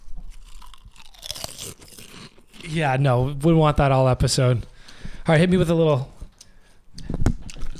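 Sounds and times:
crunching potato chips at the microphone: 0.3 - 3.0
speech: 2.6 - 4.7, 5.3 - 6.1.

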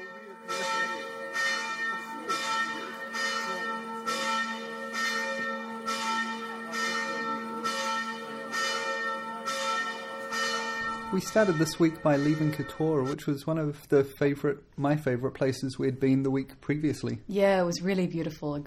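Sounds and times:
church bells ringing in a small riverside town with a fortress: 0.0 - 13.4
speech: 11.1 - 18.6.

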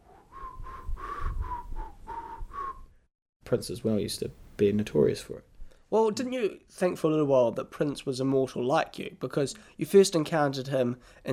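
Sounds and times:
person whistling a short tune: 0.3 - 2.9
speech: 3.5 - 11.3.

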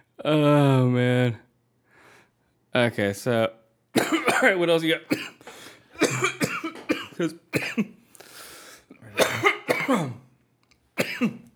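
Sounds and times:
speech: 0.2 - 1.4, 2.8 - 5.6, 7.2 - 8.0, 9.2 - 10.2, 11.2 - 11.4
person coughing: 4.0 - 5.4, 6.0 - 8.0, 9.0 - 10.3, 11.0 - 11.5
throat clearing: 6.0 - 7.9, 9.0 - 10.3, 11.0 - 11.5.

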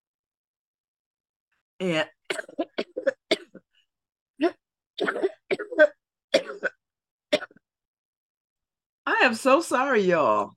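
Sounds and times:
speech: 1.8 - 2.4, 9.3 - 10.5
person coughing from a tickle in the throat: 2.3 - 3.6, 4.4 - 6.8.

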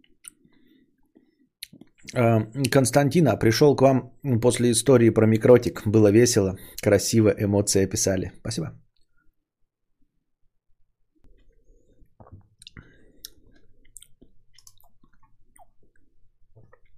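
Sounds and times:
speech: 2.1 - 8.9
wet chewing of juicy lychee: 11.2 - 16.9.

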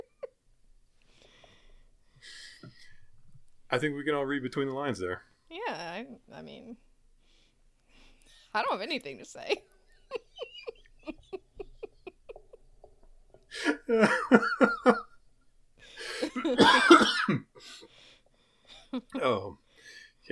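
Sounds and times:
speech: 3.7 - 6.9, 8.5 - 10.2, 13.6 - 15.0, 16.4 - 17.9, 18.9 - 19.6
laughter: 9.6 - 12.6, 13.5 - 15.1, 16.0 - 16.9
person coughing hard with harsh hacking: 16.2 - 17.5.

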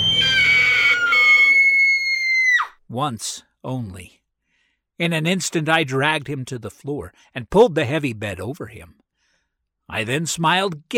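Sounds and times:
old man shrieking: 0.0 - 2.8
speech: 2.9 - 4.2, 5.0 - 9.0, 9.9 - 10.9.

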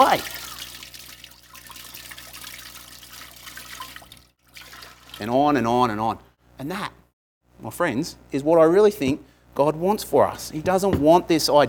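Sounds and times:
water being poured: 0.0 - 5.5
speech: 0.1 - 0.4, 5.2 - 7.0, 7.6 - 11.6.

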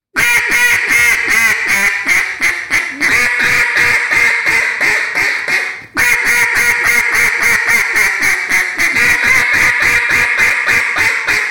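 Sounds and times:
duck call blown as pleading hen quacks: 0.1 - 11.4.

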